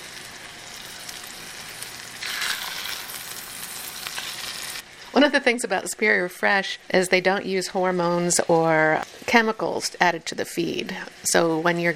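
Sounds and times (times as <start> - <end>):
salted salmon sizzling in hot butter and oil: 0.0 - 5.2
speech: 5.2 - 11.9.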